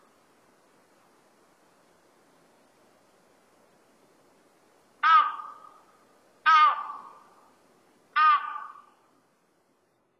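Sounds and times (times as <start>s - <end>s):
crested ibis giving harsh nasal crow-like calls on Sado: 5.0s - 7.4s, 8.2s - 9.0s.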